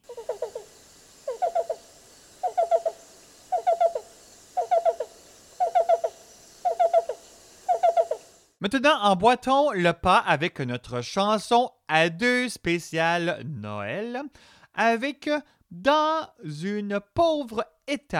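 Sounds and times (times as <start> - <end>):
migratory woodland-edge bird repeating hooting notes: 0.0 - 8.5
speech: 8.6 - 18.1.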